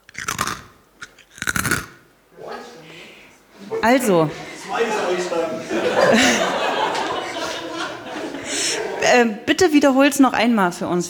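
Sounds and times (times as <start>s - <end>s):
crisp crunching as someone bites into crunchy food: 0.0s - 2.0s
laughter: 2.4s - 9.3s
speech: 3.8s - 6.6s, 9.0s - 11.0s.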